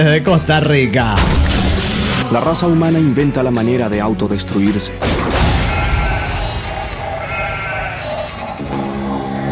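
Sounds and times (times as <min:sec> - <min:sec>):
speech: 0:00.0 - 0:01.5, 0:02.3 - 0:05.3
sheep bleating: 0:05.5 - 0:09.4.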